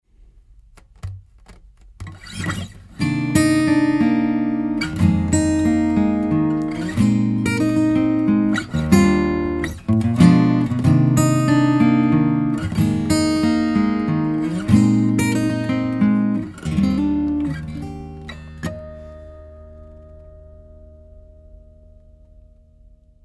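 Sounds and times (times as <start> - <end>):
acoustic guitar recorded with omni microphone: 0.6 - 23.2.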